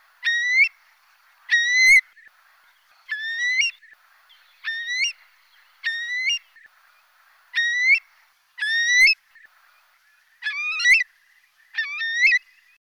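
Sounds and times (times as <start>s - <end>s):
Eurasian curlew rising whistled calls: 0.2s - 0.7s, 3.1s - 3.9s, 4.6s - 5.2s, 5.8s - 6.6s, 7.5s - 8.0s, 8.6s - 9.2s, 10.4s - 11.1s, 11.7s - 12.7s.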